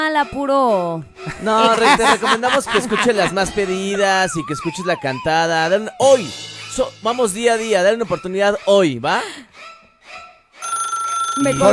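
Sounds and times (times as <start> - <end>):
speech: 0.1 - 9.7, 11.4 - 11.7
laughter: 1.2 - 5.4
telephone ringing for an incoming call: 10.6 - 11.7.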